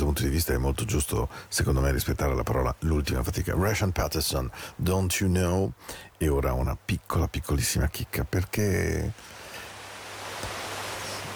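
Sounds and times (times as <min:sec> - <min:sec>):
sea waves: 0:00.0 - 0:06.3, 0:07.0 - 0:11.3
speech: 0:00.2 - 0:09.3.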